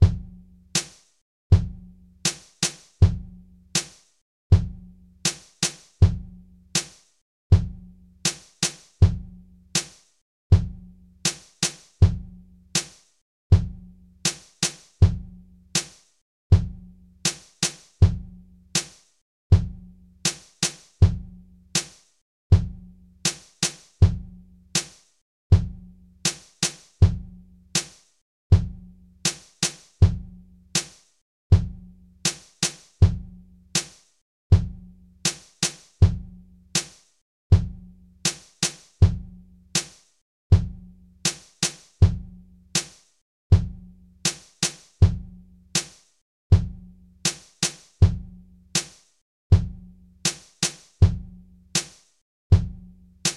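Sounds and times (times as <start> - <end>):
calm drums: 0.0 - 22.0, 22.6 - 25.0, 25.6 - 28.0, 28.6 - 31.0, 31.6 - 34.0, 34.6 - 37.0, 37.6 - 40.0, 40.6 - 43.0, 43.6 - 53.3.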